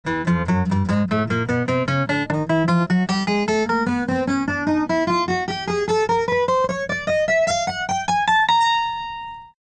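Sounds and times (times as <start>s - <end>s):
guitar: 0.0s - 9.6s.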